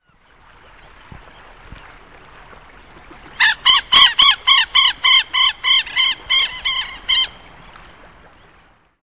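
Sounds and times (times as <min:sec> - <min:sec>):
southern lapwing calling: 0:03.3 - 0:07.5.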